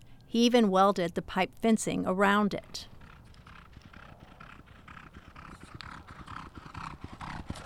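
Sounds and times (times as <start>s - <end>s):
speech: 0.3s - 2.9s
hoofbeats of horses ridden by exercise riders galloping around a training track: 2.5s - 7.6s.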